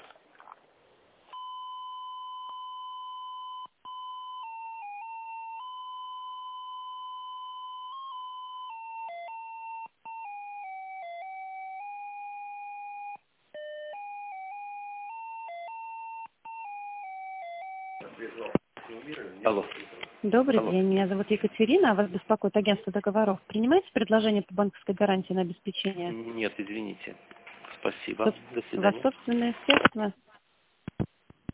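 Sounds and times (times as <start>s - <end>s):
electronic telephone line tones during call transfer: 1.4s - 18.1s
speech: 18.0s - 30.2s.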